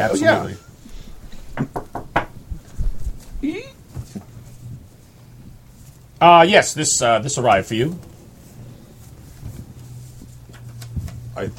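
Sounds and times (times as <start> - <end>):
speech: 0.0 - 0.7, 6.2 - 8.1, 11.4 - 11.5
knocking on the door of a room in a larger suite: 1.6 - 2.4.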